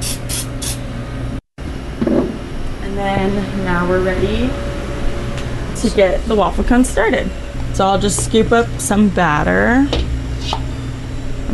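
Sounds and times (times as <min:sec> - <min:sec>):
nonstick cooking spray hissing onto warmed waffle cone irons: 0:00.0 - 0:00.8
steady hum: 0:00.0 - 0:11.5
speech: 0:03.0 - 0:04.7, 0:05.8 - 0:10.6.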